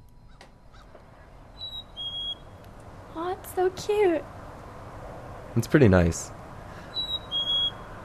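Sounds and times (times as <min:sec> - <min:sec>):
soft hiss: 0:00.0 - 0:08.0
black-capped chickadee whistled call: 0:01.6 - 0:02.6, 0:06.8 - 0:08.0
speech: 0:03.4 - 0:04.4, 0:05.6 - 0:06.4.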